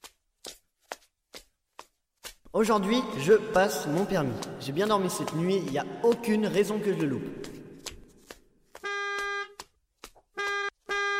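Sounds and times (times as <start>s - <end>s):
speech: 2.5s - 7.5s
car horn honking: 8.8s - 9.6s, 10.4s - 11.1s.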